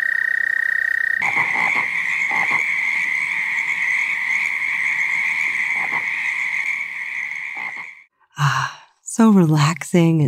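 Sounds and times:
chorus of toads trilling at a pond at night: 0.0 - 8.1
speech: 9.2 - 10.2.

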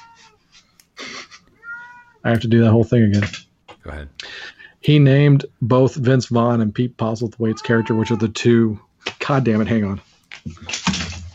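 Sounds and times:
cat meowing: 0.0 - 0.4, 1.6 - 2.2, 7.5 - 8.3
speech: 2.2 - 10.8.

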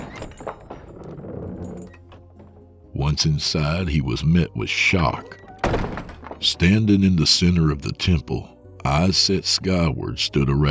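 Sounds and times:
heavy temple doors being pushed open: 0.0 - 2.8, 5.1 - 6.7
speech: 3.1 - 10.6.

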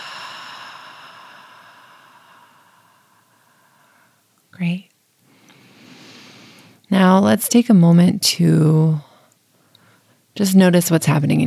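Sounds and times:
breath exhaled through the mouth in a slow breathing exercise: 0.0 - 4.2
speech: 4.6 - 4.9, 6.9 - 9.1, 10.4 - 11.4.

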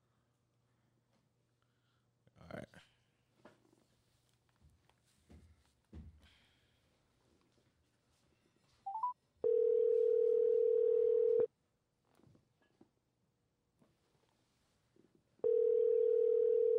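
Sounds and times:
quick telephone dialing beeps: 8.9 - 11.5
telephone ringback tone: 8.9 - 11.5, 15.4 - 16.7.

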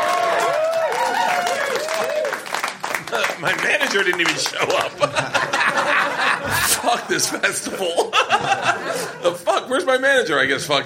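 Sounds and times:
live festival audience whooping and shouting: 0.0 - 2.6
live festival audience clapping: 0.0 - 6.6
laughter: 3.0 - 9.4
speech: 3.4 - 10.8.

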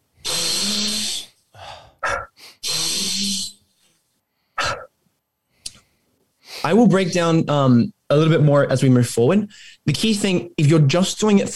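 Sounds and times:
deep forceful breathing in and out: 0.2 - 3.5
speech: 6.6 - 11.5.

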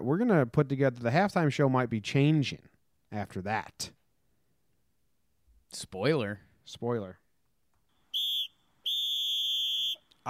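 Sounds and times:
speech: 0.0 - 4.0, 5.7 - 7.2
shrill whistle blasts blown to start the second half: 8.0 - 10.2.

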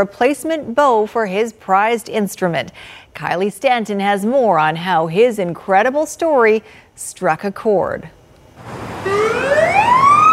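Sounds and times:
speech: 0.0 - 9.8
emergency vehicle siren: 8.6 - 10.3.

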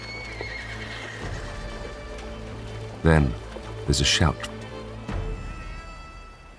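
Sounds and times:
horses neighing: 0.0 - 3.5
hooves pounding at speed: 0.0 - 6.5
speech: 3.0 - 4.5.

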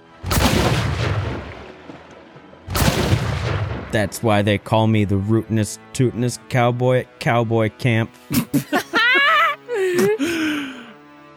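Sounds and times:
loud wet-sounding explosion: 0.2 - 1.8, 2.7 - 4.2
speech: 3.9 - 8.8, 10.0 - 10.3
laughter: 8.2 - 10.9.

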